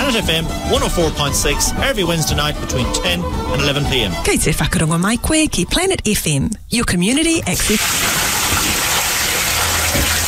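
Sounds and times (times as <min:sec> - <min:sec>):
speech: 0:00.1 - 0:08.1
water gushing from a leak in a waterproofing advert: 0:07.6 - 0:10.2.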